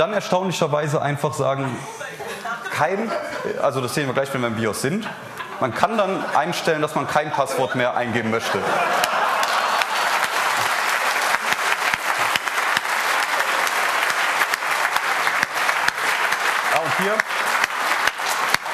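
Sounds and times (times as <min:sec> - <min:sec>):
speech: 0:00.0 - 0:08.9
laughter: 0:01.6 - 0:04.1, 0:04.7 - 0:17.6
audience applause: 0:08.6 - 0:18.7.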